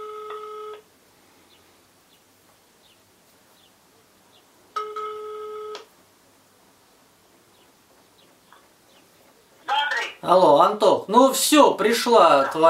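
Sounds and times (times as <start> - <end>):
ringback tone of an outgoing phone call: 0.0 - 0.9, 4.8 - 5.9
speech: 10.3 - 12.6.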